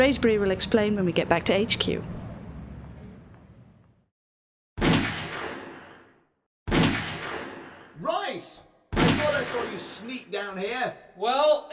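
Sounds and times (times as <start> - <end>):
speech: 0.0 - 2.2, 10.0 - 11.7
gunshots at a firing range: 4.8 - 8.2, 8.9 - 9.9.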